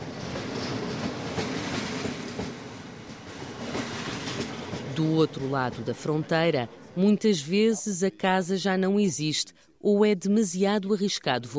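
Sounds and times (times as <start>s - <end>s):
passenger train bound for Kyiv rolling along rails: 0.0s - 6.9s
speech: 5.0s - 11.5s.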